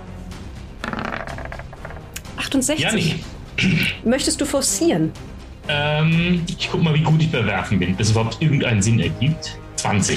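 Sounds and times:
dice clattering and tumbling across a table: 0.8 - 2.1
speech: 2.5 - 10.1.

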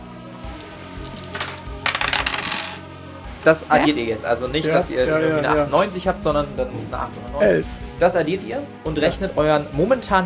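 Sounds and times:
dice clattering and tumbling across a hard surface: 1.0 - 2.8
speech: 3.4 - 10.2.

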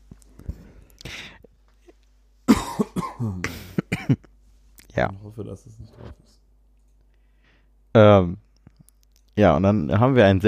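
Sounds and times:
person clearing throat: 2.5 - 4.3
person coughing in harsh bursts: 2.5 - 4.3
speech: 3.2 - 3.6, 5.0 - 6.4, 7.9 - 8.5, 9.4 - 10.4.

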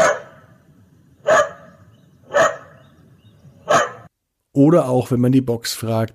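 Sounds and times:
dog barking: 0.0 - 0.6, 1.2 - 2.8, 3.6 - 4.1
speech: 4.6 - 6.1.

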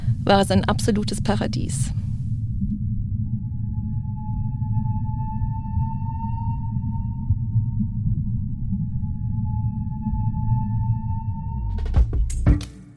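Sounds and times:
dense low underwater rumble: 0.0 - 12.2
speech: 0.3 - 2.1
whale calls recorded underwater: 3.0 - 11.6.

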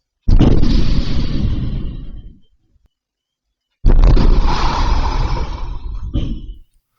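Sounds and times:
explosions blowing up a bank ATM: 0.3 - 2.4, 3.8 - 6.6.

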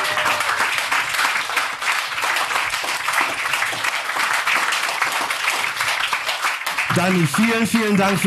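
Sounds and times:
crowd applauding for a female artist: 0.0 - 8.2
speech: 7.0 - 8.2.

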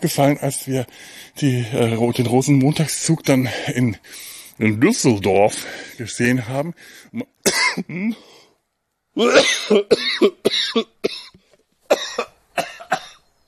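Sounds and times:
speech: 0.0 - 8.3, 9.2 - 11.3
person coughing: 7.5 - 8.2, 9.2 - 13.2.

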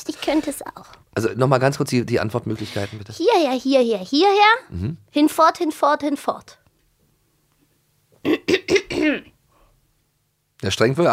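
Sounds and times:
speech: 0.0 - 6.6, 8.2 - 9.3, 10.6 - 11.1
man clearing his throat in harsh voiced bursts: 8.2 - 9.4.

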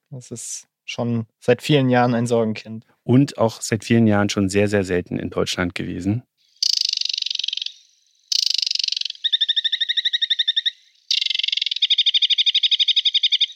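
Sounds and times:
speech: 0.1 - 6.3
Aquatic Warbler song of harsh buzzy chatters and trills: 6.6 - 13.5.

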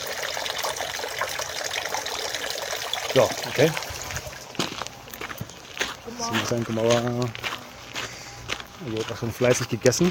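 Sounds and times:
water trickling into a small shrine purification basin: 0.0 - 4.6
speech: 3.1 - 3.9, 6.2 - 7.5, 8.8 - 10.0.

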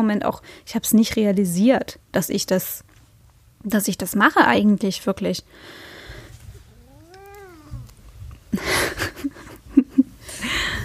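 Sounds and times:
speech: 0.0 - 2.9, 3.6 - 5.9, 8.5 - 9.1
cat meowing: 6.5 - 8.0.

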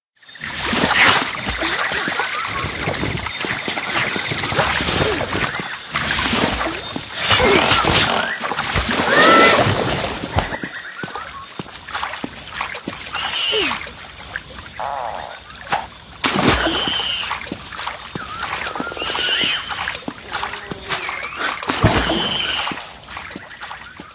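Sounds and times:
frogs croaking in a video game swamp: 0.2 - 24.1
water splashing and sloshing as someone wades through a swamp: 0.3 - 24.1.

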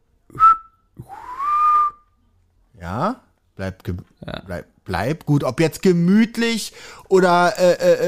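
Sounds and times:
person whistling phrases mimicking birdsong: 0.3 - 2.1
speech: 2.9 - 8.0.

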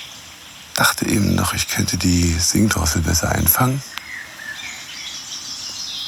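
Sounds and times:
tit calls: 0.8 - 4.0
speech: 1.0 - 4.0.

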